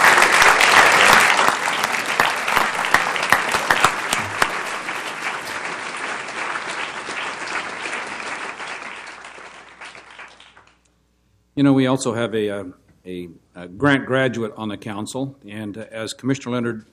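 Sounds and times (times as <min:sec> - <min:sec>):
sizable audience applauding honored teams: 0:00.0 - 0:10.8
speech: 0:11.6 - 0:16.9.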